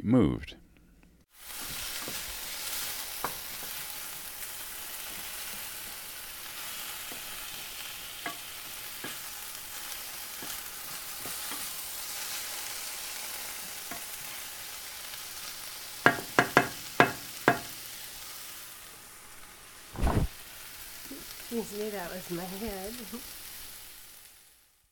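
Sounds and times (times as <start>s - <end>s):
speech: 0.0s - 0.6s, 21.6s - 23.4s
stir-fry sizzling in a hot pan: 1.3s - 24.9s
soft scrape of stirring stir-fry: 1.5s - 3.9s.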